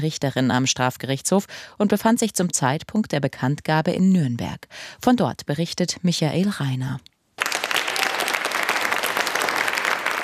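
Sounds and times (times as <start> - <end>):
speech: 0.0 - 7.1
audience applause in a courtroom: 7.4 - 10.2.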